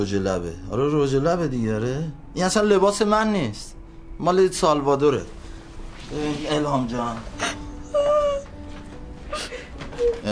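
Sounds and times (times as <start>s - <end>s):
speech: 0.0s - 5.4s, 6.1s - 7.6s
woman crying and whimpering: 7.4s - 8.6s, 9.2s - 10.3s.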